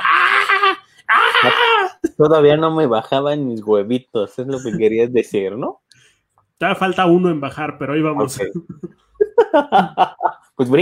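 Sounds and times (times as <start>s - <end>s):
man imitating a high-pitched girlish scream: 0.0s - 2.0s
speech: 2.2s - 5.8s, 6.6s - 10.8s
laughter: 8.5s - 10.6s.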